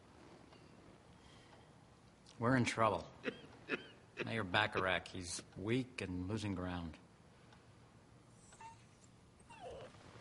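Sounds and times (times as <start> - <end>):
low hum: 0.0 - 10.1
speech: 2.4 - 7.0
sick dog whimpering: 8.5 - 10.0.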